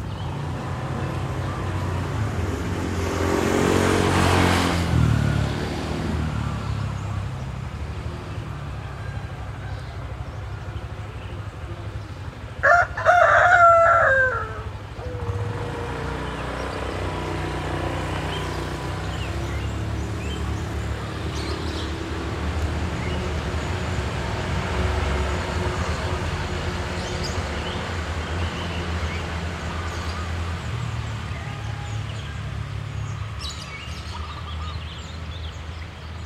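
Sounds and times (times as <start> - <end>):
steady low rumble of village traffic and activity: 0.0 - 36.2
vehicle passing: 0.0 - 36.2
rooster crowing loudly: 8.8 - 10.2, 12.6 - 16.1.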